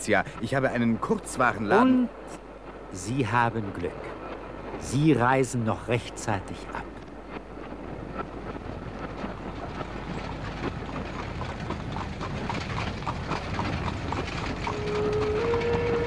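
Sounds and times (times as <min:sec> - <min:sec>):
speech: 0:00.0 - 0:04.2, 0:04.8 - 0:06.9
rushing wind-like noise: 0:00.0 - 0:16.0
horses' hooves clip-clopping, pulling a carriage: 0:06.9 - 0:16.0.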